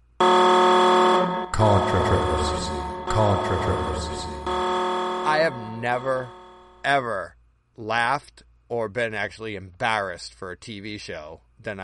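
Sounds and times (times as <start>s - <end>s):
loud harsh alarm buzzer: 0.2s - 6.8s
speech: 1.6s - 4.5s, 5.3s - 11.8s.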